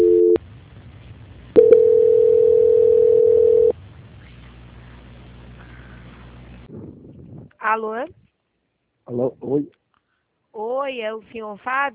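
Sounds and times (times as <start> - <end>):
telephone tone during a call transfer: 0.0 - 0.4, 1.6 - 3.7
speech: 7.7 - 8.2, 9.1 - 9.8, 10.6 - 11.9.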